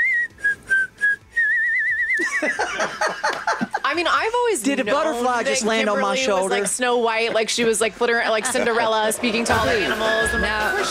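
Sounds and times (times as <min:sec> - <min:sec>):
person whistling a melody: 0:00.0 - 0:02.3
laughter: 0:02.2 - 0:04.0, 0:06.5 - 0:10.1
speech: 0:02.4 - 0:10.9.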